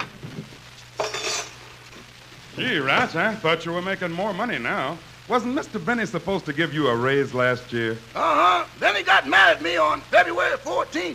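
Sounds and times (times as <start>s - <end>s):
low hum: 0.0s - 11.1s
silverware clattering as it is put away: 1.0s - 1.6s
speech: 2.6s - 11.1s.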